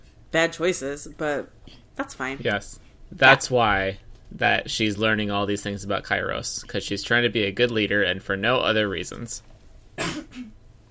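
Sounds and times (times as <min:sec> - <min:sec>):
speech: 0:00.3 - 0:10.6
sharp cough: 0:10.0 - 0:10.6.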